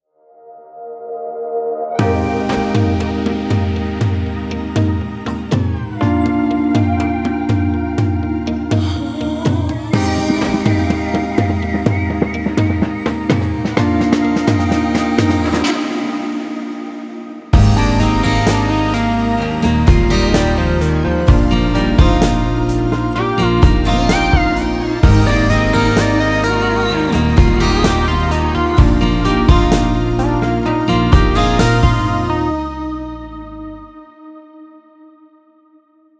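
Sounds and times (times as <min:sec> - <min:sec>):
acoustic music: 0:01.9 - 0:34.5.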